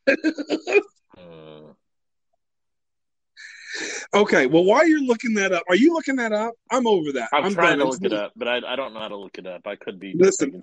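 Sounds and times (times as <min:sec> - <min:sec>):
speech: 0:00.0 - 0:00.9, 0:04.2 - 0:10.6
person clearing throat: 0:00.0 - 0:01.7
person coughing: 0:00.1 - 0:00.9
faint vocal sound: 0:01.2 - 0:01.7.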